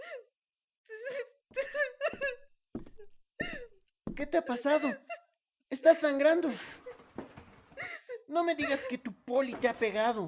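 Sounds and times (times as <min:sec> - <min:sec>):
woman crying and wailing in sobbing bursts: 0:00.9 - 0:03.8, 0:04.4 - 0:05.4, 0:07.7 - 0:09.1
speech: 0:04.2 - 0:05.1, 0:05.8 - 0:06.8, 0:08.3 - 0:10.2.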